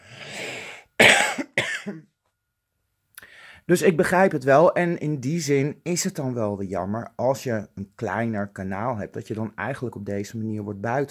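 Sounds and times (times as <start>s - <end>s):
person coughing in sharp harsh bursts: 1.0s - 2.1s
speech: 1.9s - 2.1s, 3.7s - 11.0s.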